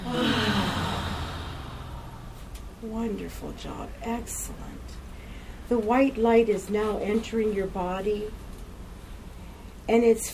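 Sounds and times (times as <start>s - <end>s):
long deep breath in and out during a guided relaxation exercise: 0.0s - 2.5s
speech: 2.8s - 5.1s, 5.7s - 8.4s, 9.9s - 10.3s.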